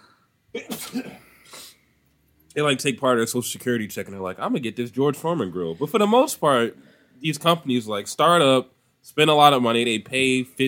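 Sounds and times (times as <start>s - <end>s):
speech: 0.6s - 1.3s, 2.6s - 10.6s
person sneezing: 0.6s - 1.8s.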